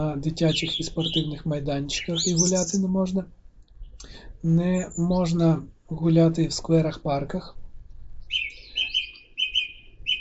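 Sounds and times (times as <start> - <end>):
speech: 0.0 - 3.4, 4.0 - 7.6
birds singing outdoors in short trills: 0.0 - 5.6, 8.2 - 10.2
low rumble: 0.0 - 8.7.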